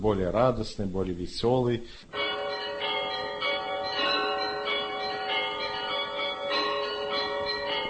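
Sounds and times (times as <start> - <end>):
speech: 0.0 - 2.2
eight-ton church bell tolling for call to prayer: 2.1 - 7.8.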